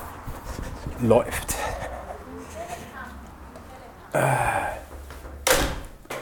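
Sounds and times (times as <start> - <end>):
speech: 1.0 - 1.5, 4.1 - 4.8
door swinging shut with a solid thud: 4.8 - 6.2.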